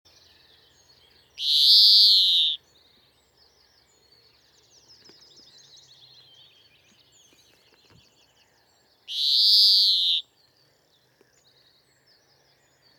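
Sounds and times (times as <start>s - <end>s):
European greenfinch nasal buzzy wheezing call: 1.4s - 2.6s, 9.1s - 10.2s.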